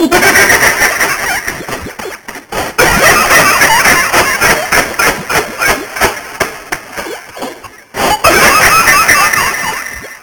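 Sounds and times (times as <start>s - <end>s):
person laughing: 0.0s - 2.2s, 2.8s - 6.2s, 8.0s - 10.0s.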